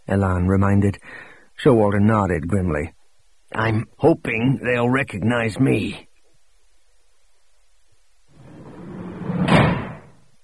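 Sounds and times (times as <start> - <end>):
speech: 0.1 - 6.1
door slamming shut: 8.6 - 10.2.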